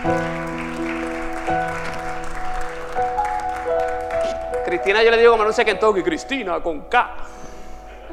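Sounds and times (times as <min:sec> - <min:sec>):
audience applause during a religious talk: 0:00.0 - 0:05.7
speech: 0:04.7 - 0:07.5.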